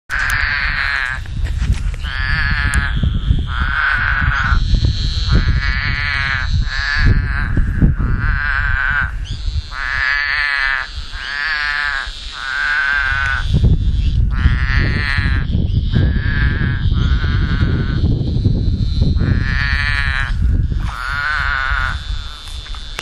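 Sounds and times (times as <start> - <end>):
Scaphiopus couchii: 0.1 - 23.0.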